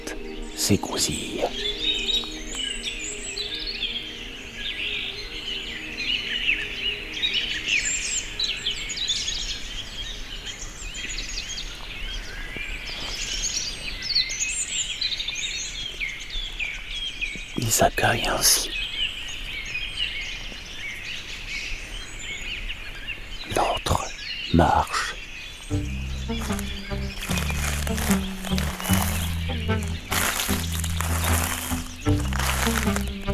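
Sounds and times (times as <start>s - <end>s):
many birds chirping and singing at dawn: 0.0s - 33.3s
speech: 0.6s - 2.0s, 17.8s - 18.7s, 24.6s - 25.0s.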